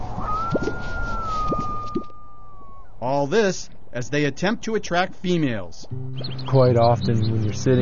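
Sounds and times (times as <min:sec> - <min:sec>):
outdoor noise: 0:00.0 - 0:07.7
displaying male bird's low bubbling chest-pouch pops: 0:00.3 - 0:00.8, 0:01.4 - 0:02.1
speech: 0:03.0 - 0:07.7.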